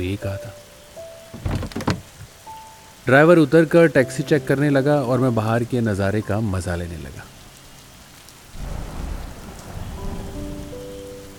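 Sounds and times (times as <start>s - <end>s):
speech: 0.0s - 0.7s, 3.1s - 7.3s
steady dense rain falling: 0.0s - 11.3s.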